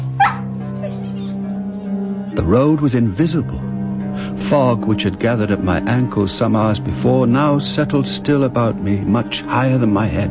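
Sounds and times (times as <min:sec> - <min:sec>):
dog whimpering yip: 0:00.2 - 0:01.3
speech: 0:02.4 - 0:03.7, 0:04.3 - 0:10.2.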